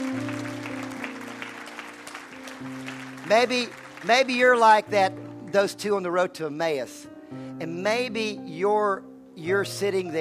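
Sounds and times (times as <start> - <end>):
crowd applauding: 0.0 - 5.6
sustained keyboard or organ chords: 0.0 - 10.1
speech: 3.3 - 10.1.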